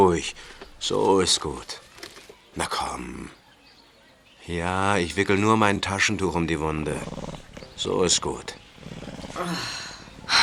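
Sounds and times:
speech: 0:00.0 - 0:01.8, 0:02.6 - 0:03.4, 0:04.5 - 0:10.4
lion growling and snarling: 0:06.5 - 0:10.4.

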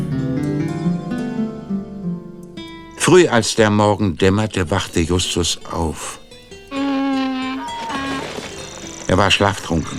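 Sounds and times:
donkey braying at dawn: 0:00.2 - 0:03.0, 0:04.8 - 0:09.9
speech: 0:03.1 - 0:06.2, 0:09.2 - 0:09.9.

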